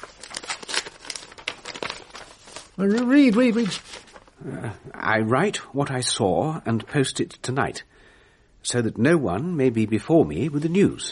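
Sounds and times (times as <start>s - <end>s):
letter envelope being torn open: 0.0s - 4.3s
speech: 2.8s - 8.0s, 8.6s - 11.1s.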